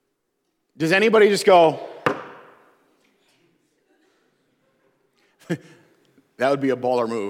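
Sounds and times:
speech: 0.8 - 1.9, 5.5 - 5.8, 6.4 - 7.2
sharp knock: 2.0 - 2.6.

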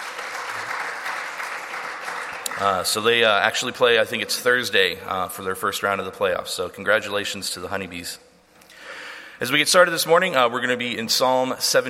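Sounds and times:
audience applause congratulating a girls' team: 0.0 - 3.1
speech: 2.6 - 8.3, 9.4 - 11.8.

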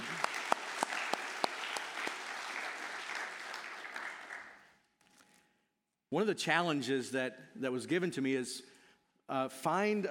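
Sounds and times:
audience applauding: 0.0 - 4.7
speech: 6.1 - 8.7, 9.3 - 10.0.

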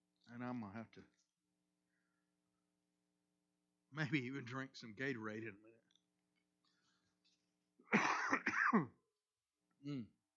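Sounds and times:
speech: 0.4 - 1.2, 3.9 - 5.8, 8.7 - 9.0, 9.8 - 10.2
person clearing a frog in the throat: 7.9 - 9.0
person coughing: 7.9 - 9.0.

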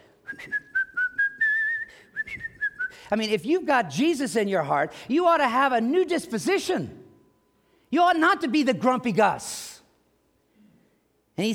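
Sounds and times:
person whistling a cheerful bouncy tune: 0.3 - 3.0
speech: 3.1 - 7.0, 7.9 - 9.6, 11.4 - 11.5.

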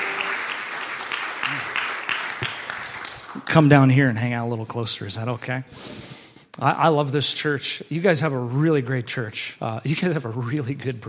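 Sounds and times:
audience applauding with hand clapping: 0.0 - 3.7
speech: 1.5 - 1.8, 3.5 - 11.0.

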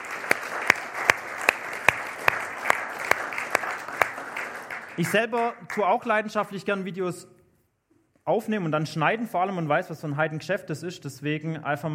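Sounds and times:
audience clapping: 0.0 - 6.3
speech: 5.0 - 7.4, 8.3 - 11.9.

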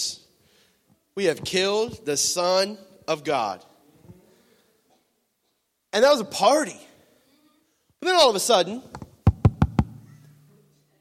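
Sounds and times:
speech: 1.2 - 3.7, 6.0 - 6.9, 8.0 - 9.0
knocking on a door: 9.3 - 10.0.

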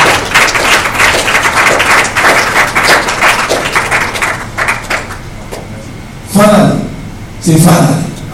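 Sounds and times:
crowd clapping hands for the Lord: 0.0 - 5.7
speech: 7.4 - 8.1.

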